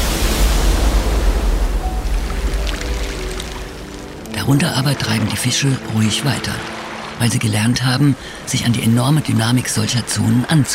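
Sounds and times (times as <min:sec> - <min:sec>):
foaming surf waves crashing: 0:00.0 - 0:10.7
speech: 0:04.5 - 0:10.7.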